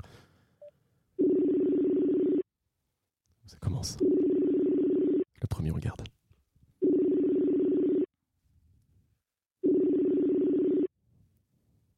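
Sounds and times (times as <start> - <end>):
long steady telephone tone: 0.6 - 2.5, 4.0 - 5.2, 6.8 - 8.1, 9.6 - 10.9
speech: 3.5 - 4.2, 5.6 - 6.1.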